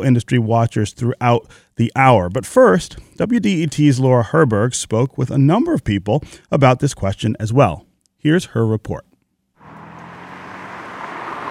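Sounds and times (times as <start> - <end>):
speech: 0.0 - 9.1
city traffic road hiss at a street corner in Midtown Detroit: 9.6 - 11.5
vehicle approaching: 9.6 - 11.5.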